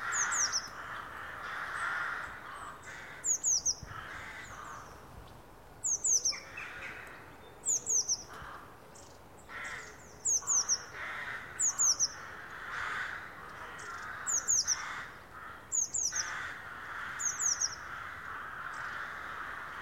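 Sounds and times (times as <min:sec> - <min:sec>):
other birds giving lower harsh calls: 0:00.0 - 0:05.0, 0:05.8 - 0:19.7.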